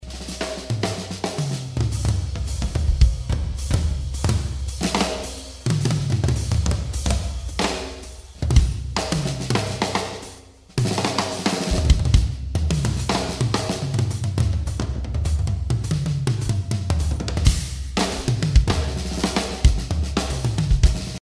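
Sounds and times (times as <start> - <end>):
drum kit: 0.0 - 21.2.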